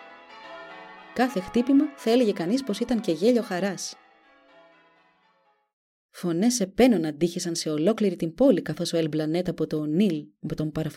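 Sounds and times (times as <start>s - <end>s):
church bell ringing: 0.0s - 5.7s
speech: 1.2s - 4.0s, 6.2s - 10.9s.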